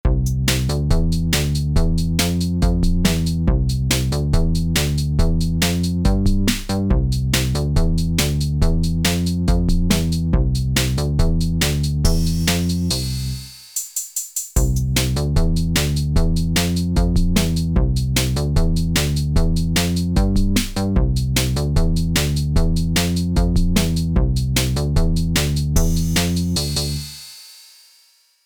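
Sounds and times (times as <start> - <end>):
hasty bingo background music with bass: 0.0 - 13.6, 14.6 - 27.2.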